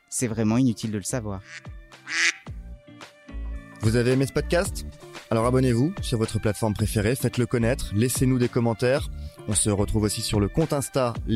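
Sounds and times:
speech: 0.1 - 2.4, 3.8 - 11.3
duck quacking: 1.4 - 2.5.

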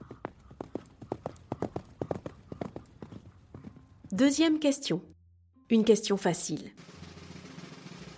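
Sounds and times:
horse hooves clip-clopping: 0.0 - 4.2
speech: 4.1 - 5.1, 5.7 - 6.9.

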